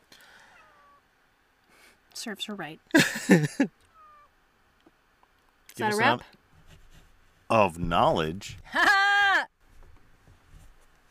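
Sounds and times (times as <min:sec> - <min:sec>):
speech: 0:02.2 - 0:03.8, 0:05.8 - 0:06.4, 0:07.5 - 0:09.0
female cat meowing: 0:03.9 - 0:04.3.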